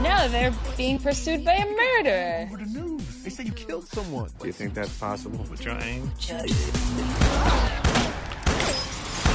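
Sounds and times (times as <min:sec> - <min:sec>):
speech: 0:00.2 - 0:07.8
warning gunshots in a comedic film scene: 0:07.2 - 0:09.3.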